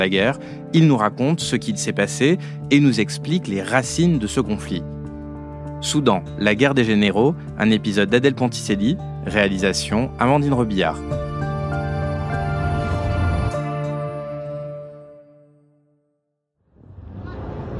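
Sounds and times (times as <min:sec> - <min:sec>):
speech: 0:00.0 - 0:05.0, 0:05.8 - 0:11.3
sustained musical drone: 0:10.9 - 0:15.6.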